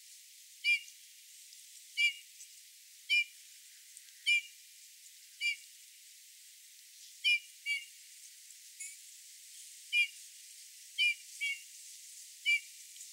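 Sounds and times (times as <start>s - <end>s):
background hiss: 0.0s - 13.1s
Eurasian bullfinch Pyrrhula pyrrhula piping whistled calls: 0.6s - 0.8s, 2.0s - 2.2s, 4.3s - 4.5s, 5.4s - 5.6s, 7.2s - 7.9s, 9.9s - 10.1s.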